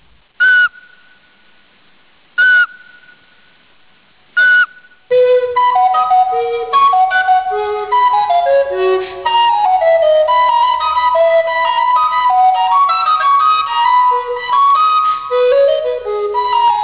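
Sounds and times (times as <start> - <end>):
Eurasian pygmy owl whistled call: 0.4 - 1.1, 2.4 - 3.2, 4.4 - 16.8
recorder playing a flowing melody: 4.4 - 16.8.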